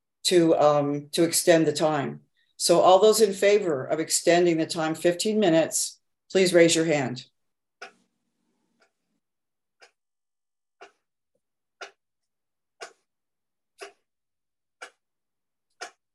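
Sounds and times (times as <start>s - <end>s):
speech: 0.3s - 7.9s
steady ticking clicks: 2.6s - 9.2s, 9.8s - 10.1s, 10.8s - 11.1s, 11.7s - 12.0s, 12.7s - 13.1s, 13.7s - 14.1s, 14.8s - 15.1s, 15.7s - 16.1s.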